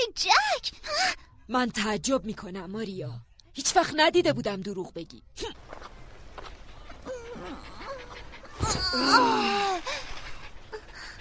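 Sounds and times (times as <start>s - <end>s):
speech: 0.0s - 5.9s, 8.9s - 10.0s
soft murmuring: 6.6s - 11.1s
dog whimpering: 7.0s - 11.1s.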